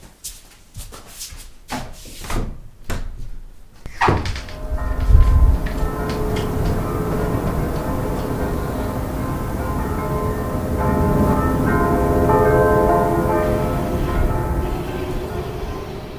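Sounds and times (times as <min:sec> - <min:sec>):
Orthodox church bells pealing: 0:04.2 - 0:16.1
steady rumble: 0:04.4 - 0:16.1.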